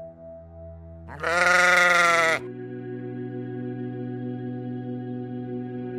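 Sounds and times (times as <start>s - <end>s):
mob of sheep bleating: 1.1s - 2.5s.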